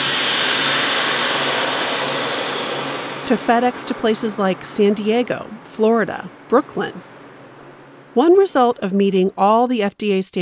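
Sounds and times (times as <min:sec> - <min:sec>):
vacuum sealer running with mechanical whir and hiss: 0:00.0 - 0:03.3
speech: 0:03.3 - 0:07.1, 0:08.2 - 0:10.4.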